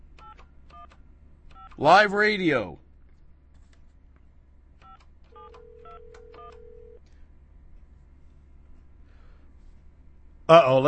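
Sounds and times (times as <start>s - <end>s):
steady low hum: 0.0s - 10.8s
speech: 1.8s - 2.8s, 10.5s - 10.8s
touch-tone beeps of a phone number being dialed: 4.8s - 7.0s.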